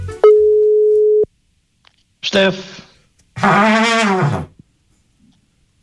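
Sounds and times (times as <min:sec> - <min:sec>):
telephone line tone while placing a call: 0:00.2 - 0:01.3
speech: 0:02.3 - 0:02.8, 0:03.4 - 0:04.5.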